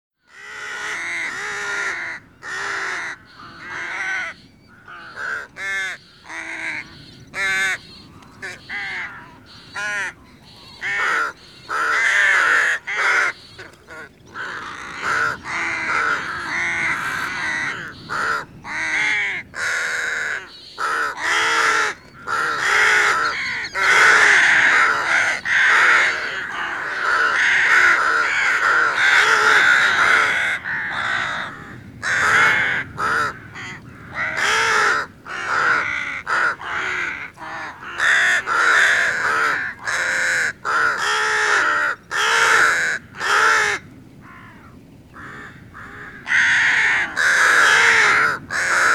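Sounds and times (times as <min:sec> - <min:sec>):
rook calling: 0:00.3 - 0:48.9.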